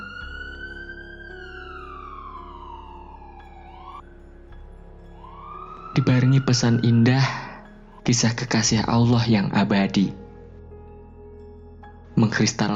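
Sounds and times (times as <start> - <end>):
ambulance siren wailing on the street: 0.0 - 8.9
speech: 6.0 - 10.2, 12.2 - 12.7.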